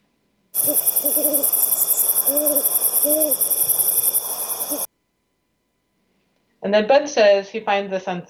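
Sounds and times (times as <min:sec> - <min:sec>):
speech: 0:00.6 - 0:03.6, 0:06.6 - 0:08.2
dense chorus of insects or crickets buzzing: 0:00.6 - 0:04.9
owl hooting in wavering calls: 0:00.6 - 0:04.9.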